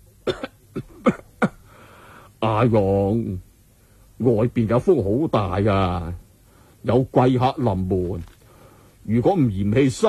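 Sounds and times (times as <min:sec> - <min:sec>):
old man coughing: 0:00.2 - 0:01.7
speech: 0:02.5 - 0:03.5, 0:04.2 - 0:06.2, 0:06.8 - 0:08.3, 0:09.0 - 0:10.0.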